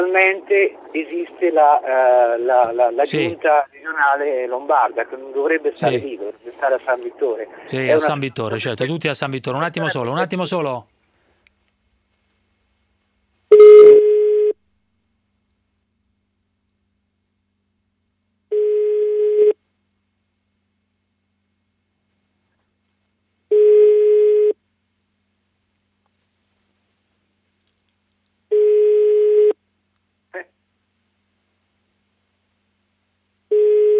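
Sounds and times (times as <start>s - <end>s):
speech: 0.0s - 11.0s
unanswered telephone ringing: 13.5s - 14.6s, 18.5s - 19.6s, 23.5s - 24.6s, 28.5s - 29.6s, 33.5s - 33.9s.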